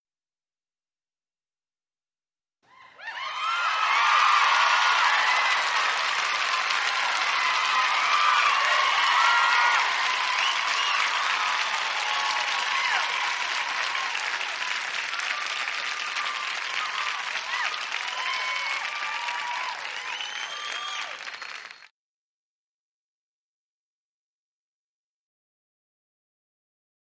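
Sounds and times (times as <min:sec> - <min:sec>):
huge football crowd in sports arena: 0:02.7 - 0:21.9.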